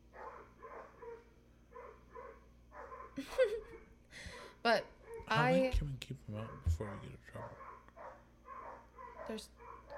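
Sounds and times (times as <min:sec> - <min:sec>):
dog barking: 0:00.1 - 0:03.9, 0:05.0 - 0:05.4, 0:06.4 - 0:09.9
speech: 0:04.6 - 0:07.7, 0:09.3 - 0:09.6.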